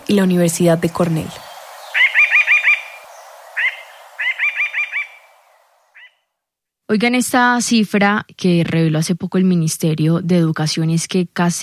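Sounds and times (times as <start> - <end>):
speech: 0.1 - 1.5, 6.9 - 11.6
mountain jay giving a rapid trill of harsh notes: 0.1 - 6.2.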